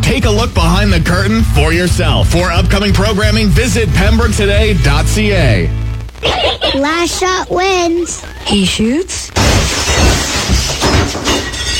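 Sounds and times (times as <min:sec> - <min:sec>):
speech: 0:00.2 - 0:09.8
noisy debris of breaking glass: 0:09.4 - 0:11.7
window glass shattering: 0:09.4 - 0:11.7.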